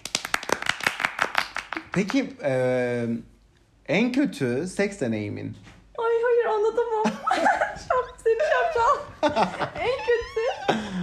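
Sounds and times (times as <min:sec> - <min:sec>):
hand clapping from a small group: 0:00.0 - 0:02.3
speech: 0:02.0 - 0:03.3, 0:03.9 - 0:05.7
laughter: 0:07.0 - 0:11.0.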